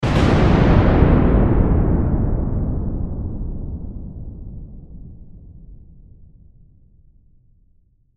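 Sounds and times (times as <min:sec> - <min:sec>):
large lightning bolt thunder blast: 0:00.0 - 0:06.4.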